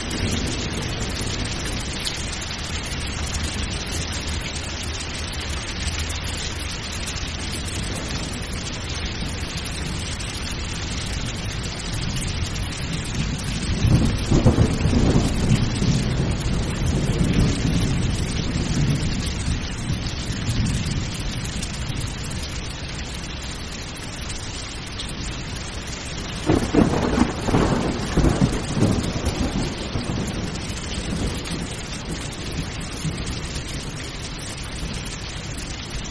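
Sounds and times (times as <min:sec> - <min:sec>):
steady dense rain: 0:00.0 - 0:36.0
low rolling thunder: 0:12.4 - 0:21.1, 0:26.4 - 0:34.0.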